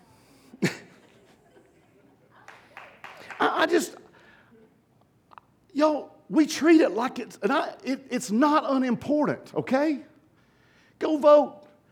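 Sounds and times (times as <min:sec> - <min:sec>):
person sneezing: 0:00.6 - 0:01.0
speech: 0:03.6 - 0:04.0, 0:05.8 - 0:10.1, 0:11.0 - 0:11.6.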